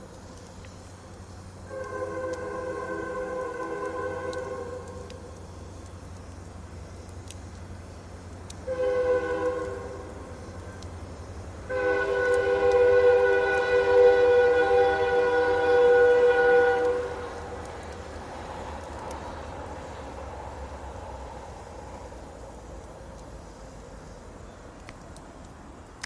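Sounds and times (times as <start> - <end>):
freight train rumbling past a park: 0.0 - 25.3
freight train horn blasts: 1.7 - 5.1, 8.6 - 10.3, 11.6 - 17.6.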